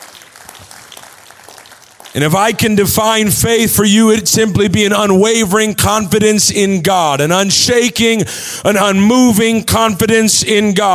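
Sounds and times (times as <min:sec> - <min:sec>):
audience clapping: 0:00.0 - 0:02.9
speech: 0:02.1 - 0:10.9.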